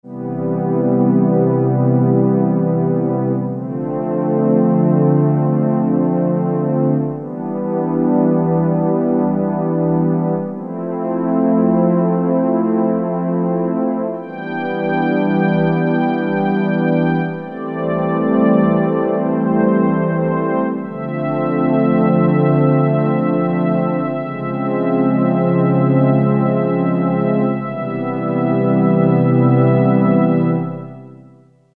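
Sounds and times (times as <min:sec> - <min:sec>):
warm synthesizer pad on E-mu Proteus FX factory preset: 0:00.1 - 0:31.4.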